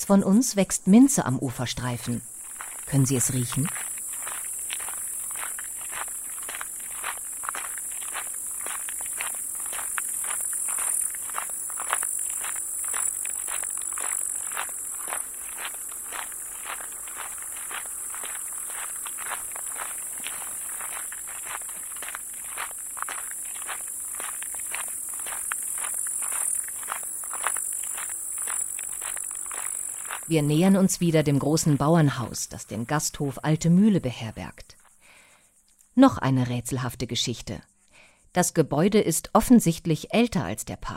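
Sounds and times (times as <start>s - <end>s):
speech: 0.0s - 3.9s, 30.4s - 34.6s, 36.0s - 37.7s, 38.3s - 40.9s
footsteps walking along the shore of a pond: 2.1s - 32.2s.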